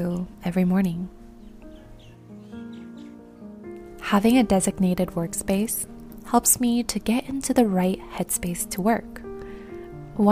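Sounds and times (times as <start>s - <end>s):
speech: 0.0s - 1.2s, 4.1s - 9.2s
birds chirping in the morning: 1.1s - 5.2s.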